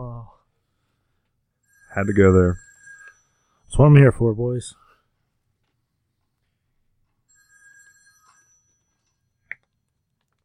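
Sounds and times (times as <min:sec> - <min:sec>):
telephone ringing with an electronic tone: 0:01.6 - 0:04.2, 0:07.2 - 0:09.4
speech: 0:01.9 - 0:02.6, 0:03.7 - 0:04.8.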